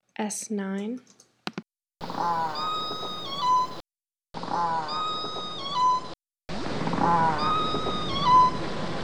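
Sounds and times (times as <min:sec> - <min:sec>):
killer whale calls: 0:02.0 - 0:03.8, 0:04.4 - 0:06.1, 0:06.9 - 0:08.8.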